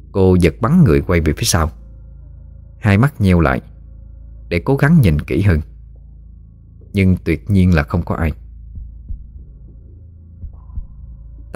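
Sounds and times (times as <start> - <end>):
steady low throbbing hum: 0.0 - 11.5
speech: 0.1 - 1.8, 2.8 - 3.7, 4.5 - 5.7, 6.9 - 8.4
pounding heartbeat: 8.4 - 11.5.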